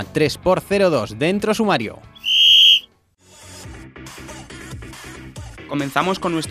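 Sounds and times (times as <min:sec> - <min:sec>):
speech: 0:00.0 - 0:02.2, 0:05.7 - 0:06.4
shrill whistle blast blown to start the program: 0:02.2 - 0:02.8.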